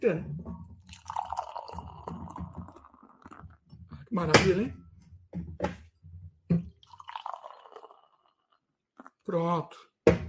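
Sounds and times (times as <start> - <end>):
speech: 0.0 - 1.2, 4.2 - 4.8, 9.3 - 9.9
beer pouring into a glass: 0.8 - 3.7, 6.6 - 9.1.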